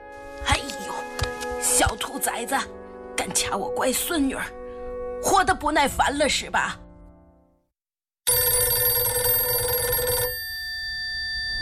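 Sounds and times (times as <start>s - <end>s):
speech: 1.8s - 4.6s, 5.2s - 6.8s
telephone bell ringing with a bright metallic clatter: 8.3s - 11.6s.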